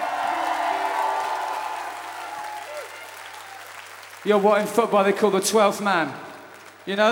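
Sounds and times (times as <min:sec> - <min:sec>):
concert crowd cheering and whooping: 0:00.0 - 0:03.9
large concert audience clapping: 0:00.0 - 0:07.1
speech: 0:04.2 - 0:07.1.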